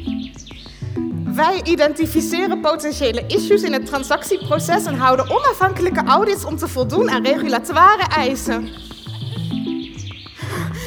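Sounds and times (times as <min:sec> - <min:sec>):
small bird singing: 0:00.0 - 0:10.8
speech: 0:01.4 - 0:08.9.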